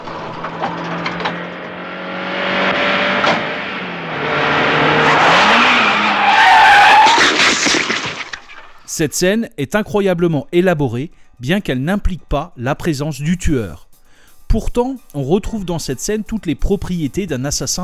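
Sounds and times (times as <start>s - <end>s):
car engine droning as the vehicle passes by: 0.0s - 6.1s
skidding tires screeching: 0.0s - 8.9s
speech: 9.0s - 13.9s, 14.5s - 17.8s.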